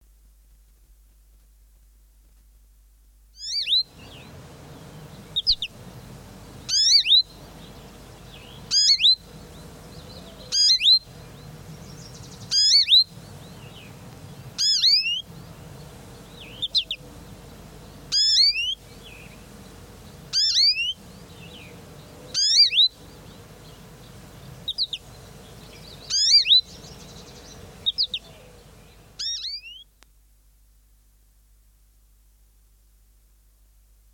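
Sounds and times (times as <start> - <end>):
American goldfinch and songbirds singing: 3.4 - 30.1.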